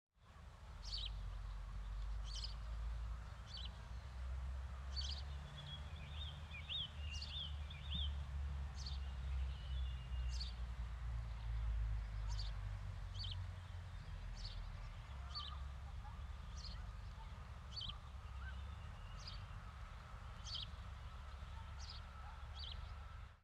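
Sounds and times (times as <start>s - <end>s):
bird at an industrial wasteland in Rhinau: 0.4s - 4.1s, 4.9s - 10.6s, 11.4s - 19.7s, 20.3s - 23.4s.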